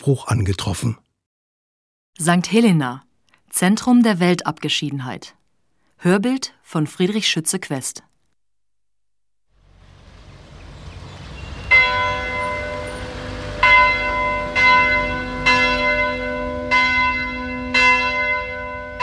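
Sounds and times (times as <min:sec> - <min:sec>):
speech: 0:00.0 - 0:01.0, 0:02.2 - 0:05.4, 0:06.0 - 0:08.1
low hum: 0:09.5 - 0:16.6
bell ringing at an Anglican parish church built in 1774 on St Helena: 0:11.2 - 0:19.0.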